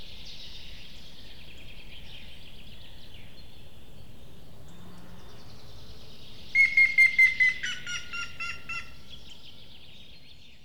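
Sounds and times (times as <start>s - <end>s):
grey-headed woodpecker calling a run of whistled notes: 6.6s - 9.0s.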